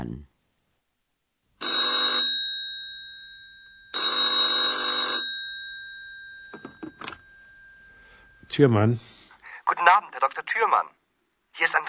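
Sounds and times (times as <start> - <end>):
telephone ringing in loud buzzy bursts: 1.6 - 8.4
speech: 8.6 - 9.2, 9.8 - 11.0, 11.6 - 11.8.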